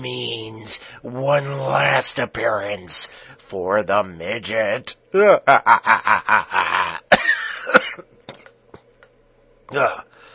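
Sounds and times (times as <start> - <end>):
speech: 0.0 - 6.9, 9.7 - 10.1
person coughing harshly in a coughing fit: 6.6 - 8.5.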